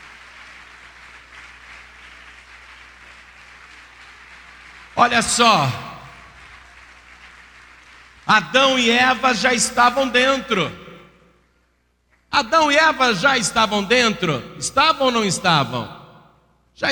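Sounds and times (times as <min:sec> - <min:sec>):
church audience applauding during a service: 0:00.0 - 0:08.9
speech: 0:05.0 - 0:05.9, 0:08.3 - 0:10.8, 0:12.4 - 0:16.0, 0:16.8 - 0:16.9.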